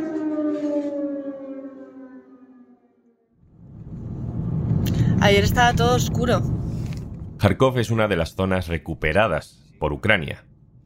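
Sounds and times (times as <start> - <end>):
air raid civil defense siren in Ukraine wailing: 0.0 - 7.4
broad rumbling noise: 3.4 - 8.7
speech: 5.2 - 6.6, 7.4 - 10.5.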